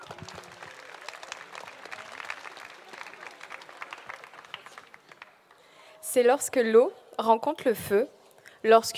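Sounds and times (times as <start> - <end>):
crowd applauding: 0.0 - 5.8
speech: 6.1 - 8.9.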